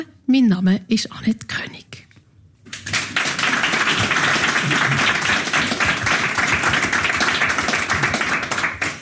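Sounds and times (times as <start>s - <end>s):
speech: 0.0s - 1.9s
live audience applause at a literature festival in a small wine bar: 2.7s - 8.9s.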